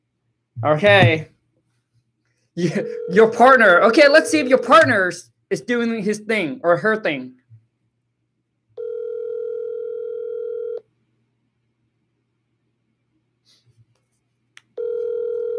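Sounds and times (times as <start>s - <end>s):
speech: 0.6s - 1.3s, 2.6s - 7.4s
electronic ringback buzz of an unanswered outgoing phone call: 2.8s - 3.3s, 8.8s - 10.8s, 14.8s - 15.5s.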